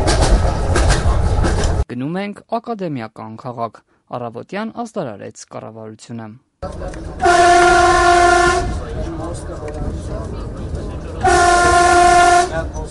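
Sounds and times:
Armenian moving train rumble: 0.0 - 1.9, 6.6 - 12.8
speech: 1.9 - 10.5
Armenian train horn blasts: 7.2 - 8.8, 11.2 - 12.7.

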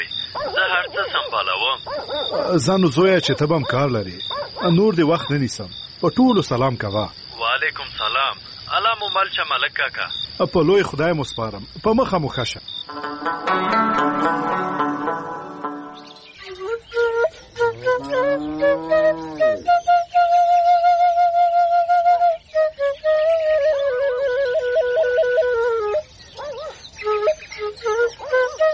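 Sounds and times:
speech: 0.3 - 14.6
dense harmonically rich music: 12.9 - 16.4
shepherd's flute melody: 12.9 - 28.7.

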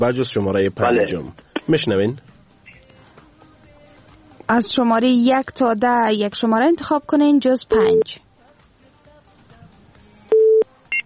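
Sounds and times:
speech: 0.0 - 2.4, 4.5 - 8.2
electronic busy tone beeps after a dropped telephone call: 7.7 - 8.1, 10.3 - 11.0.

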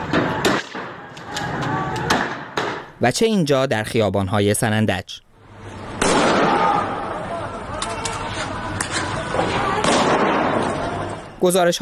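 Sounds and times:
gunshots fired at street protesters: 0.0 - 1.1, 2.1 - 2.9, 6.0 - 6.9, 9.7 - 11.0
loud chaotic crowd shouting in an outdoor street: 0.0 - 2.5, 5.8 - 11.4
speech: 3.0 - 5.2, 11.4 - 11.7.

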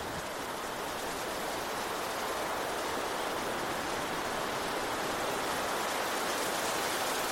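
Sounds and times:
stormy downpour of heavy rain: 0.0 - 7.3.

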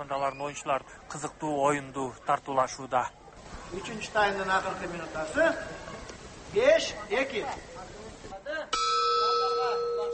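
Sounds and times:
speech: 0.0 - 5.8, 6.5 - 7.7
bell ringing to end the third period of an ulak match: 8.7 - 10.1.

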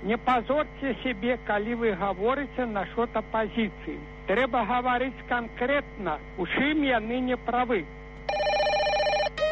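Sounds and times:
speech: 0.0 - 8.5
loud warbling electronic telephone ring for an incoming call: 8.3 - 9.4.

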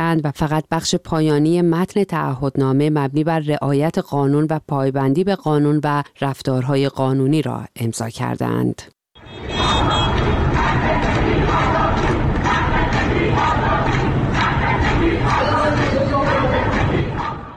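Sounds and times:
speech: 0.1 - 10.4
crowd of lawyers chanting and shouting in protest: 9.2 - 17.5.

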